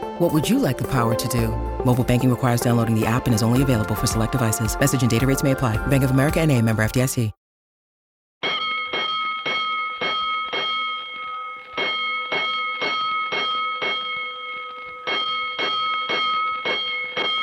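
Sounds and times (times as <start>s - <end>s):
speech: 0.2s - 7.4s
fire station alarm bell ringing: 8.4s - 17.4s.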